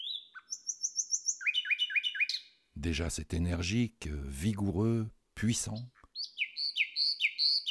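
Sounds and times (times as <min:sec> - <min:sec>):
common nightingale singing: 0:00.0 - 0:02.8, 0:05.5 - 0:07.6
speech: 0:02.8 - 0:06.0.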